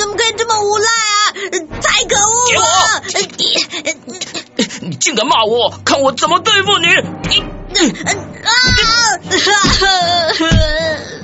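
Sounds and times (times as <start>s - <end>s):
bullied child crying and sobbing at school: 0.0s - 4.6s, 7.7s - 11.2s
speech: 5.0s - 8.6s.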